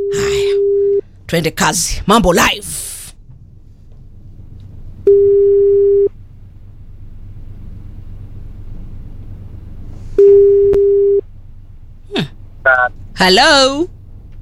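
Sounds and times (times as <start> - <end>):
low rumbling hum: 0.0 - 14.3
speech: 1.3 - 2.8, 13.2 - 14.3
outgoing phone call ringback tone: 5.1 - 6.1, 10.2 - 11.2.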